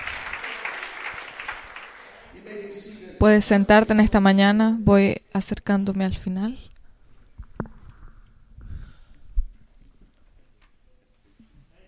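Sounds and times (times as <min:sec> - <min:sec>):
church audience clapping: 0:00.0 - 0:02.9
speech: 0:02.4 - 0:06.7.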